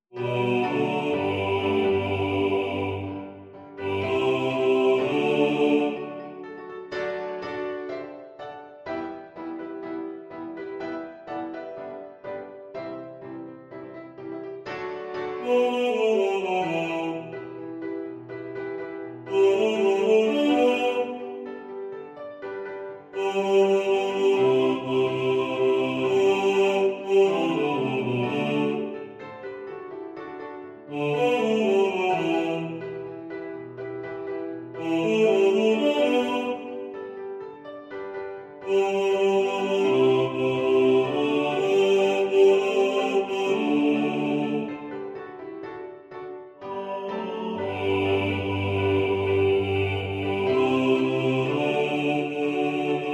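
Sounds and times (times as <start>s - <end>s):
piano: 0.0s - 53.1s
male choir singing: 0.1s - 6.4s, 15.3s - 17.8s, 19.2s - 21.5s, 23.1s - 29.2s, 30.9s - 33.2s, 34.7s - 37.1s, 38.6s - 45.0s, 46.7s - 53.1s.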